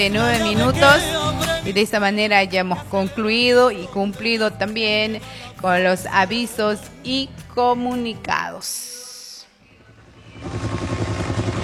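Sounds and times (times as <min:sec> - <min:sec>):
speech: 0:00.0 - 0:09.0
helicopter flying overhead: 0:10.1 - 0:11.6.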